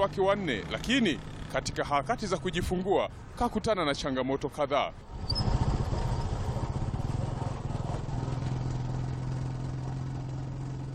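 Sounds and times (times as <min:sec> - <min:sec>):
motorcycle engine droning on a ride through hilly country: 0:00.0 - 0:02.6, 0:05.0 - 0:10.9
speech: 0:00.0 - 0:05.4.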